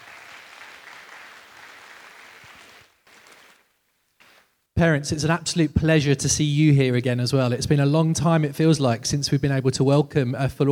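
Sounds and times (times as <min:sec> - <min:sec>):
crowd applauding: 0:00.0 - 0:04.4
speech: 0:04.8 - 0:10.7.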